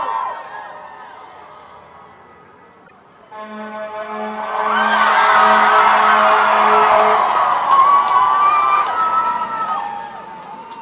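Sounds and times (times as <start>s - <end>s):
large crowd of protesters cheering and shouting: 0.0s - 1.9s, 4.4s - 10.8s
car horns honking: 3.3s - 7.3s.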